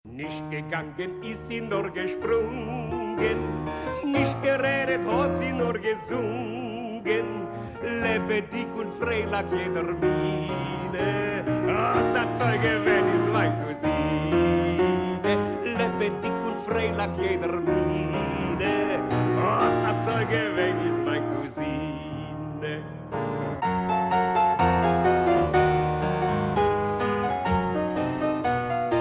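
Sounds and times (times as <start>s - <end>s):
pretty piano tone: 0.0s - 29.0s.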